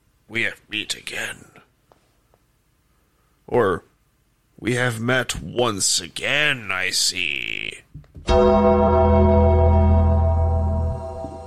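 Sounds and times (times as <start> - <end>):
speech: 0.3 - 1.6, 3.5 - 3.9, 4.6 - 8.8
bell struck with a bright clang: 8.3 - 11.4.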